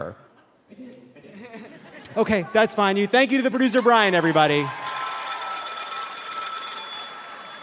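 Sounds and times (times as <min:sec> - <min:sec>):
speech: 0:00.0 - 0:04.8
laughter: 0:00.8 - 0:02.8
telephone bell ringing: 0:04.9 - 0:07.6.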